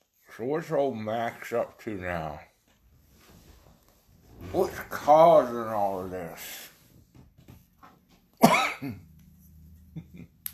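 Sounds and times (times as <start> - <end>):
speech: 0.4 - 2.5, 4.4 - 6.7, 8.4 - 9.0
person coughing: 8.4 - 9.1.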